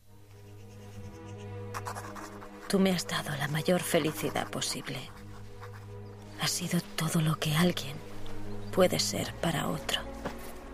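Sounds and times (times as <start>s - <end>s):
pen scratching on paper writing a letter by hand: 0.3s - 5.9s
speech: 2.7s - 5.2s, 6.5s - 8.1s, 8.8s - 10.1s.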